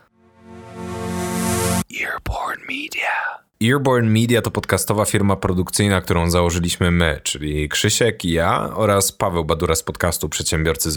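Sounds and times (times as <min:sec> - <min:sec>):
rich sustained chord in a podcast audio logo: 0:00.0 - 0:01.8
breathy whispered vocal sounds: 0:01.9 - 0:03.5
speech: 0:02.7 - 0:10.9.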